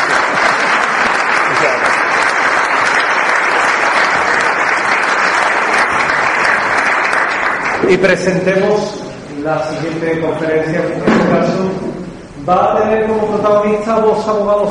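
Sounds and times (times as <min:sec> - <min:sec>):
audience applause at a conference after a talk: 0:00.0 - 0:08.0
speech: 0:07.9 - 0:11.9, 0:12.5 - 0:14.6.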